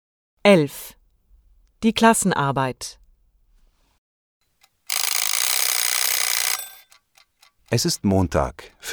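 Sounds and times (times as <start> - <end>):
speech: 0.4 - 1.0, 1.8 - 3.0, 7.7 - 8.9
alarm clock ringing: 4.6 - 8.6.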